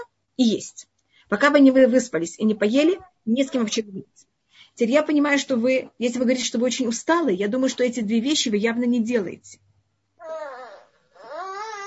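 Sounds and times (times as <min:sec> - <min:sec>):
speech: 0:00.4 - 0:09.6
small baby babbling: 0:02.5 - 0:03.8, 0:10.2 - 0:11.8.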